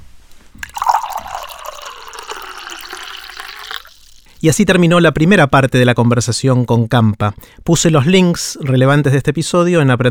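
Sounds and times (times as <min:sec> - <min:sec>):
drinking water pouring into a glass: 0:00.6 - 0:04.6
speech: 0:04.4 - 0:10.0.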